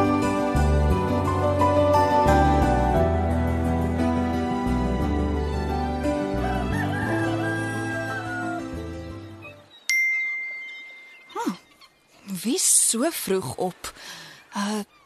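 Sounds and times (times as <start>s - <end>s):
music: 0.0s - 10.7s
speech: 12.4s - 14.9s.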